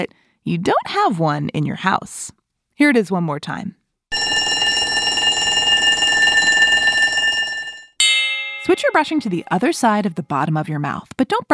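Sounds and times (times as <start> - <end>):
speech: 0.0 - 3.8, 8.7 - 11.5
school bell ringing: 4.1 - 9.7.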